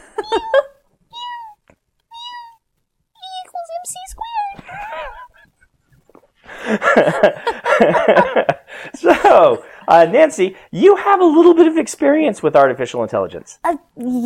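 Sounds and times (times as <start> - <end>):
speech: 0.2 - 0.6, 7.0 - 8.3, 9.3 - 14.2
kitten meowing: 1.1 - 2.6
laughter: 4.6 - 5.7, 6.5 - 9.6.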